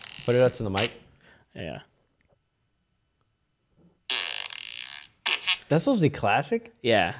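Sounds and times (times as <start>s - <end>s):
speech: 0.2s - 1.9s, 5.7s - 7.1s
squeezing fart sound effect: 4.1s - 5.6s.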